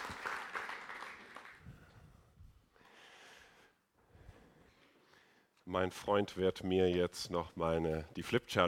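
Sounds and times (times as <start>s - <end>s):
audience applauding: 0.0s - 1.7s
speech: 5.7s - 8.6s.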